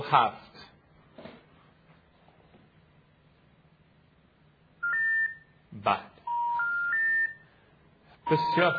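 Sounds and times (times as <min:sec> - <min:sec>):
speech: 0:00.1 - 0:00.5, 0:05.8 - 0:06.1, 0:08.3 - 0:08.7
dual-tone telephone keypad beep from a number being dialled: 0:04.8 - 0:05.4, 0:06.3 - 0:07.4, 0:08.3 - 0:08.7.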